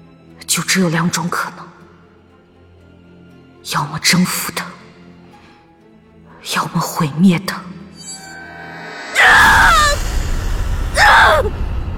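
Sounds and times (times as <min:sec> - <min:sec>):
speech: 0:00.5 - 0:01.6, 0:03.7 - 0:04.7, 0:06.5 - 0:07.7
low rumble: 0:08.0 - 0:11.9
woman screaming loudly: 0:09.0 - 0:10.2, 0:11.0 - 0:11.5.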